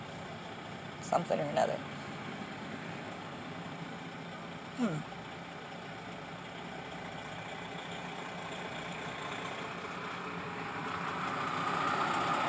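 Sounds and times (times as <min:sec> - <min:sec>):
heavy container truck engine rumbling: 0:00.0 - 0:12.4
traffic noise: 0:00.0 - 0:12.4
speech: 0:01.1 - 0:02.0, 0:04.8 - 0:05.1.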